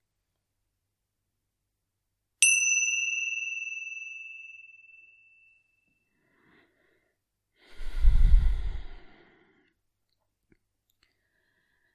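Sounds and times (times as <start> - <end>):
meditation chime ringing: 2.4 - 6.1
deep breath: 6.1 - 9.8, 11.1 - 11.9.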